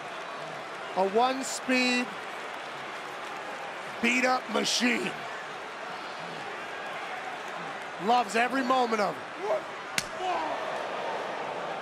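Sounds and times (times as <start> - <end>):
crowd noise: 0.0 - 11.8
speech: 1.0 - 2.2, 4.0 - 5.3, 8.0 - 10.7
hard open-hand slap to the body: 10.0 - 10.2.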